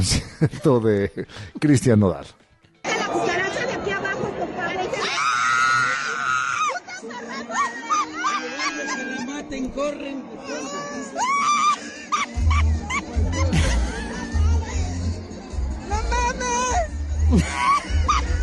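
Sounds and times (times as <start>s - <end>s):
speech: 0.0s - 2.4s, 17.3s - 17.9s
loud crowd chatter at a concert: 2.8s - 18.4s
crowd laughter at a concert: 2.9s - 5.1s, 6.1s - 9.6s, 11.2s - 15.3s, 17.2s - 18.4s
woman shrieking in fright at cockroaches at a concert: 5.0s - 6.9s, 10.6s - 12.6s.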